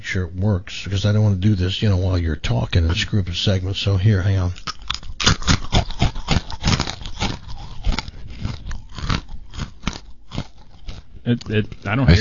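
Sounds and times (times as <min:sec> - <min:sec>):
speech: 0:00.1 - 0:04.8, 0:11.3 - 0:12.1
person chewing crunchy pretzels: 0:04.0 - 0:12.1.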